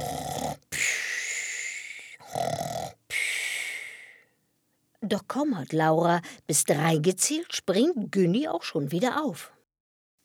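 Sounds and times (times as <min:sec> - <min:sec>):
loud exaggerated snoring performed by a voice: 0:00.0 - 0:03.4
speech: 0:05.1 - 0:09.6.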